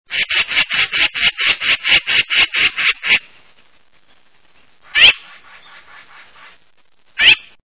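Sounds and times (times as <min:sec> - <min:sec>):
yellow-billed magpie calling: 0:00.1 - 0:03.3, 0:04.8 - 0:06.6, 0:07.2 - 0:07.6.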